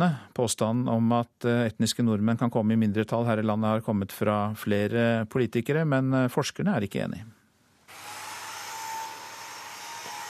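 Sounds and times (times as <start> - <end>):
speech: 0.0 - 7.4
floor sanding machine running with droning motor roar and high whine: 7.9 - 10.2.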